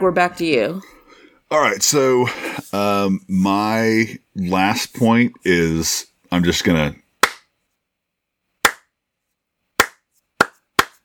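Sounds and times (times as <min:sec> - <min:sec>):
speech: 0:00.0 - 0:07.0
one person clapping slowly: 0:07.2 - 0:07.5, 0:08.6 - 0:08.9, 0:09.8 - 0:11.0.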